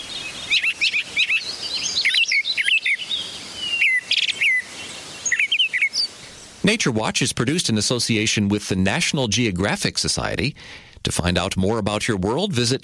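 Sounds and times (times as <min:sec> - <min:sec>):
birds singing: 0:00.0 - 0:06.6
faint hiss: 0:00.0 - 0:12.8
speech: 0:06.7 - 0:12.8.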